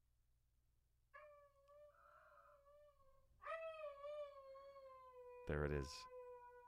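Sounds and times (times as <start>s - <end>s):
dog howling at home: 1.2s - 6.6s
speech: 5.5s - 6.1s.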